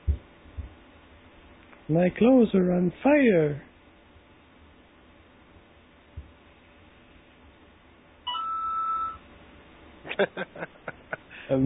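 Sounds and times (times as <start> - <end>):
low hiss: 0.0 - 11.6
speech: 1.9 - 3.7
phone text message ringtone: 8.3 - 9.2
laughter: 10.1 - 11.6.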